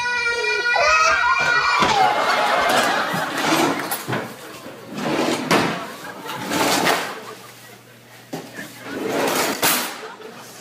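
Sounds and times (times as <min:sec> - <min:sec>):
laughter: 0:00.2 - 0:10.5
child pulling and pushing fake drawers: 0:01.9 - 0:07.4, 0:08.3 - 0:10.1.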